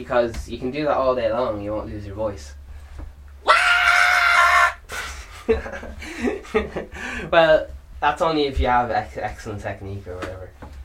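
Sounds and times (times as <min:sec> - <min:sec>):
speech: 0:00.0 - 0:02.6, 0:05.5 - 0:10.6
person imitating a crying baby with a sustained wailing scream: 0:03.4 - 0:04.8
laughter: 0:04.9 - 0:07.0.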